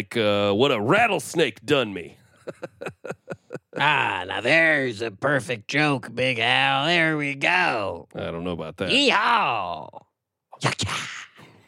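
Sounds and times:
speech: 0.0 - 2.7, 3.8 - 11.3
laughter: 2.4 - 4.2
voice imitating a whip crack: 10.6 - 11.4.

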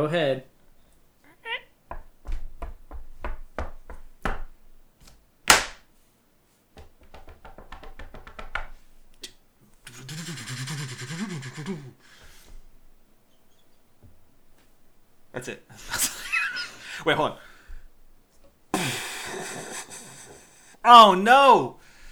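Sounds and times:
speech: 0.0 - 0.5, 15.4 - 16.0, 17.0 - 17.4, 20.8 - 21.8
footsteps: 0.6 - 5.8, 6.7 - 10.0, 12.0 - 20.9, 21.7 - 22.1
voice-imitated car engine revving: 9.9 - 12.0
laughter: 9.9 - 12.3, 15.7 - 17.5, 18.8 - 20.8.

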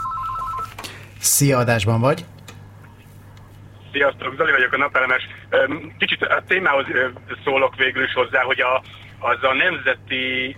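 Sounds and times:
electronic telephone ringing with a two-tone trill: 0.0 - 0.8
speech: 1.2 - 2.4, 3.9 - 10.5.

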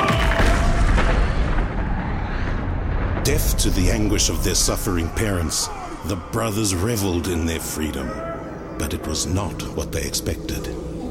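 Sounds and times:
massive explosion boom: 0.3 - 7.8
speech: 3.2 - 10.9.

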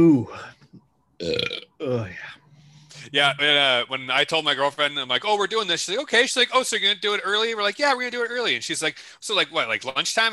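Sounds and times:
speech: 0.0 - 0.6, 1.2 - 2.3, 3.1 - 10.3
person burping after drinking Coke and Pabst beer: 1.2 - 1.9.

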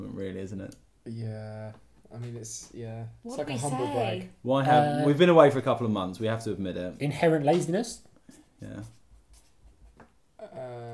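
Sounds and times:
speech: 0.2 - 9.0
pen scratching on paper: 8.8 - 10.0.

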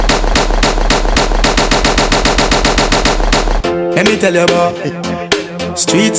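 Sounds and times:
automatic-weapon gunfire rattle: 0.0 - 3.6
speech: 4.0 - 5.2, 5.8 - 6.1.

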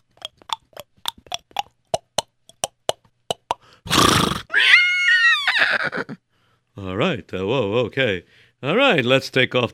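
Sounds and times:
hoofbeats of horses slowing down in a marketplace: 0.0 - 3.5
horse snorting: 3.9 - 4.5
horse whinnying: 3.9 - 6.1
speech: 6.9 - 9.7.

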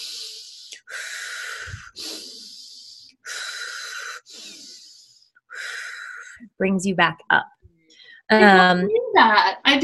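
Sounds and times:
rapid circular breathing with forceful inhales and exhales: 0.0 - 6.4
speech: 6.6 - 7.5, 8.3 - 9.8.

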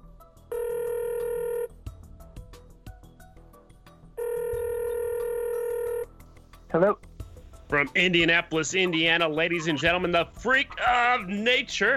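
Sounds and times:
phone call line ringing back: 0.5 - 1.7, 4.2 - 6.1
speech: 6.7 - 7.1, 7.7 - 11.9
laughter: 8.5 - 11.3.

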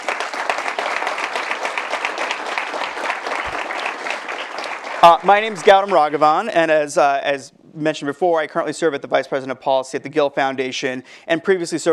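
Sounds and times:
sizable audience applause welcoming panelists: 0.0 - 6.5
speech: 5.0 - 11.9.

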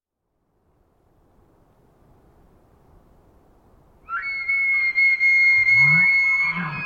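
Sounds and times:
wild elk bugling in Washington, Pacific Northwest, USA: 4.1 - 6.8.

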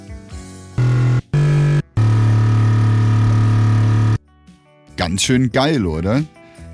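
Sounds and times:
gritty bass instrument sampled from a coffee machine: 0.8 - 4.2
speech: 5.1 - 6.4.

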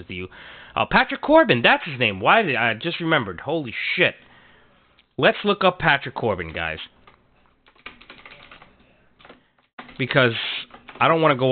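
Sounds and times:
speech: 0.0 - 4.3, 5.2 - 7.0, 10.0 - 11.5
typing on a computer keyboard: 6.5 - 11.4.

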